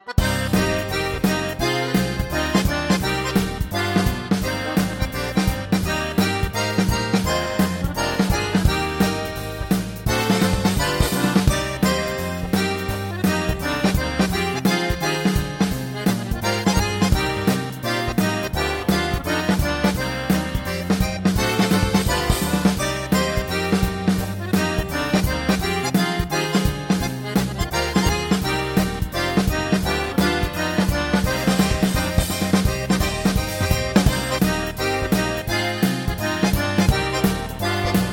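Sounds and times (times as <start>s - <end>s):
bayan chromatic button accordion: 0.0s - 38.1s.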